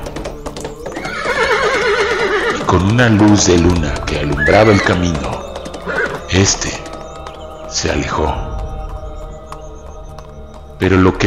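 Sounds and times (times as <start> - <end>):
horse hooves clopping: 0.0 - 11.2
horse neighing: 0.9 - 3.6, 4.2 - 6.7
speech: 2.7 - 5.4, 6.4 - 6.8, 7.7 - 8.5, 10.8 - 11.2.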